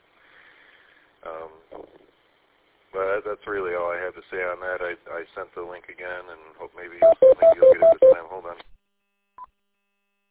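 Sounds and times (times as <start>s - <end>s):
faint steady hum: 0.0s - 10.3s
speech: 3.0s - 8.7s
electronic timer alarm beep: 7.0s - 8.2s.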